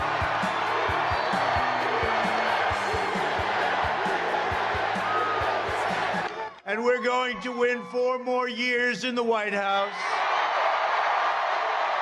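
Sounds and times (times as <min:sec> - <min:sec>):
huge crowd at a political rally cheering: 0:00.0 - 0:08.5, 0:09.6 - 0:11.9
speech: 0:07.0 - 0:10.2.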